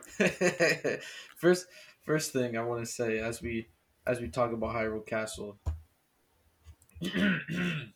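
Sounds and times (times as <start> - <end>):
laughter: 0.0 - 1.2
speech: 0.2 - 5.8, 7.0 - 7.9
rough gravelly throat clearing: 7.0 - 7.9.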